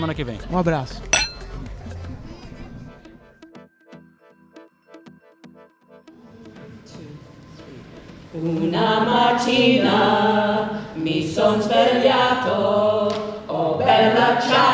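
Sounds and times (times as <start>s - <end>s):
speech: 0.0s - 1.1s, 8.4s - 14.7s
glasses clinking in a toast: 1.2s - 1.5s.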